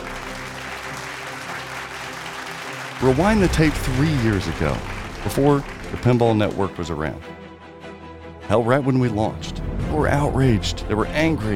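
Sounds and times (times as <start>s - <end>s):
round of applause from a group: 0.0s - 7.3s
speech: 3.0s - 7.4s, 8.5s - 11.5s.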